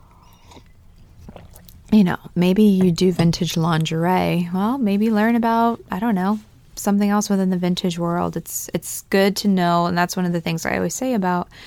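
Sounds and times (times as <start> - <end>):
sipping and slurping tea: 0.0 - 2.0
small wet mouth sounds: 0.0 - 2.4
low hum: 0.0 - 11.6
speech: 1.9 - 11.6.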